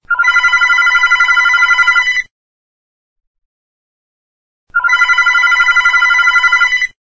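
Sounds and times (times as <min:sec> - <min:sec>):
home phone ringing: 0:00.1 - 0:02.3, 0:04.8 - 0:07.0.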